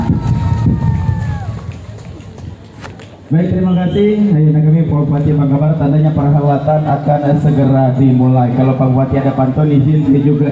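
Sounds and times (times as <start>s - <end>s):
crowd cheering and clapping at a development parade in Mentok, Indonesia: 0.0s - 2.8s
speech: 3.3s - 10.4s
high whistling tone gliding downward: 3.6s - 4.2s.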